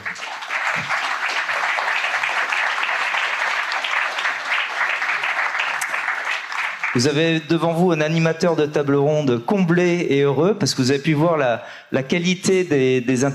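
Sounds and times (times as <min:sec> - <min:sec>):
audience applause: 0:00.0 - 0:07.2
speech: 0:07.0 - 0:13.3.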